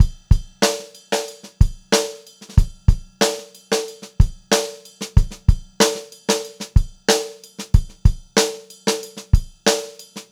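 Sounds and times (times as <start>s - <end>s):
straight variation funk groove drum loop: 0.0s - 10.2s.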